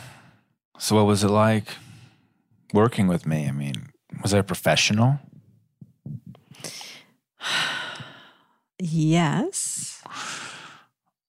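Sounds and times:
speech: 0.8s - 1.9s, 2.7s - 5.3s, 7.4s - 7.7s, 8.8s - 10.2s
person taking a sigh-like breath before speaking: 6.5s - 8.6s, 10.1s - 11.0s.

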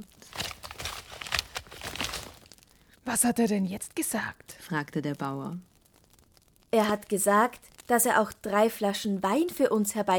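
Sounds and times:
dried hide in a sack creaking as someone steps on the sack: 0.0s - 2.8s
speech: 3.1s - 5.7s, 6.7s - 10.1s.

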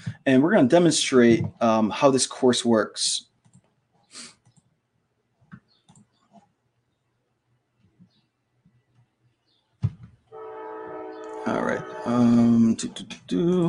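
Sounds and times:
speech: 0.2s - 3.3s, 11.7s - 13.6s
train horn blaring: 10.3s - 12.8s
train rumbling with clanks and thumps: 10.4s - 13.6s.

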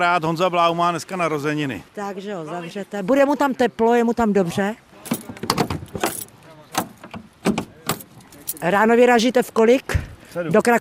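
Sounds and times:
speech: 0.0s - 5.3s, 8.6s - 10.7s
metallic clanks and rattles of a vintage car being shut away for the night: 5.0s - 8.7s
jingling: 5.0s - 8.8s.

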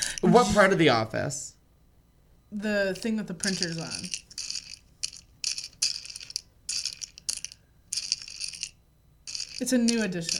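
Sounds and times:
speech: 0.2s - 1.6s, 2.5s - 4.3s, 9.6s - 10.3s
jelly beans rattling in an office candy bowl: 3.0s - 10.3s.

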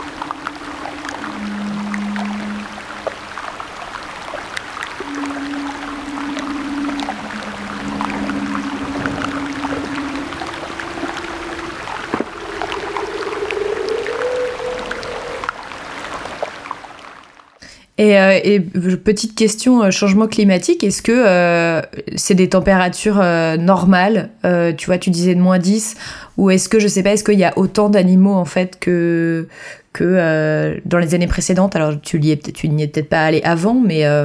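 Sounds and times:
leopard seal underwater calls as long low tonal moans: 0.0s - 17.5s
speech: 18.0s - 34.2s.

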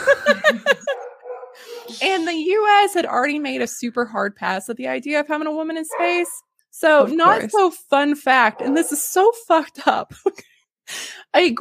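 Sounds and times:
laughter: 0.0s - 2.4s
puppies barking: 0.9s - 2.2s, 5.9s - 6.4s, 8.4s - 9.0s
speech: 2.0s - 11.5s.

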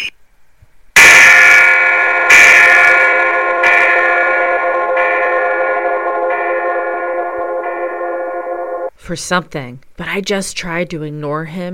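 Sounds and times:
bunch of bells ringing: 1.0s - 8.9s
speech: 9.1s - 11.7s.

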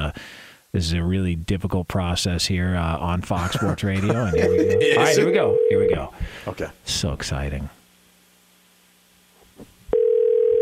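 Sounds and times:
speech: 0.7s - 7.8s
laughter: 3.4s - 5.2s
electronic ringing tone of an unanswered phone call: 4.2s - 6.0s, 9.9s - 10.6s.

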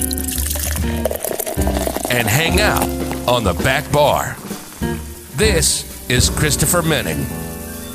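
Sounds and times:
drink pouring steadily into a glass: 0.0s - 5.4s
speech: 2.1s - 7.5s.

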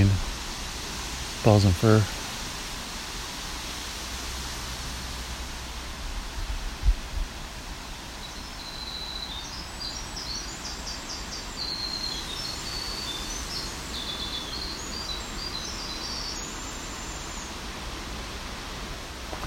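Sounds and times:
steady hiss: 0.0s - 19.4s
speech: 1.4s - 2.2s
Winter Wren song in dense woods with white pine and balsam fir: 8.1s - 17.8s.

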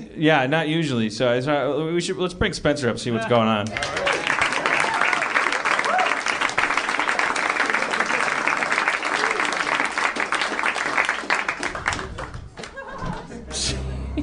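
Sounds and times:
speech: 0.2s - 4.1s
audience applause: 3.7s - 13.0s
laughter: 12.1s - 14.2s.

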